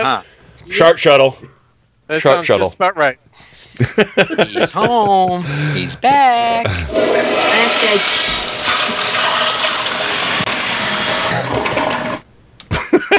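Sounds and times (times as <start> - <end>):
speech: 0.0 - 9.0
laughter: 3.5 - 6.0, 12.7 - 13.1
toilet flushing: 6.9 - 12.2.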